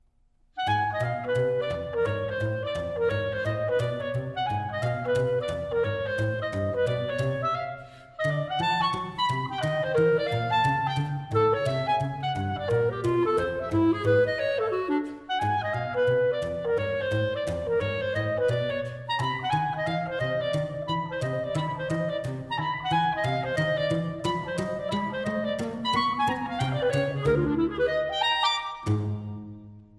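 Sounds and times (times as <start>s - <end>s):
clarinet: 0.6s - 29.9s
double bass: 0.6s - 29.9s.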